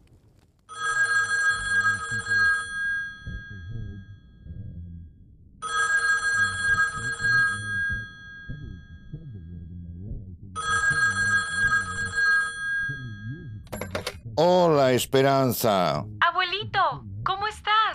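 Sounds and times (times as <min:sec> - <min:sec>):
telephone ringing: 0:00.7 - 0:04.2, 0:05.6 - 0:08.7, 0:10.6 - 0:14.2
low music: 0:05.6 - 0:17.9
speech: 0:14.4 - 0:16.2.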